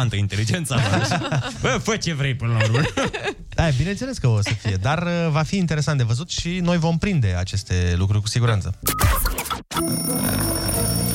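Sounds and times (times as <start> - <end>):
speech: 0.0 - 10.5
laughter: 0.7 - 1.9, 2.5 - 3.4
alarm clock bell ringing: 9.8 - 11.1.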